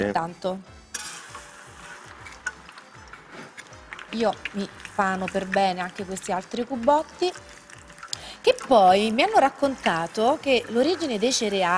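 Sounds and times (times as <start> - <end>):
speech: 0.0 - 0.8, 4.1 - 7.5, 8.4 - 11.7
food sizzling briefly in hot oil during a quick fry: 0.7 - 11.7.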